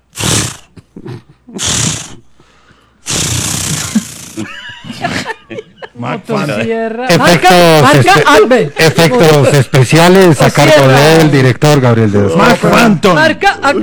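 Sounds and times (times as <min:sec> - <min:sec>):
voice imitating a chainsaw engine starting: 0:00.2 - 0:00.7, 0:01.6 - 0:02.2, 0:03.1 - 0:04.5
laughter: 0:03.8 - 0:07.5
speech: 0:06.0 - 0:13.8.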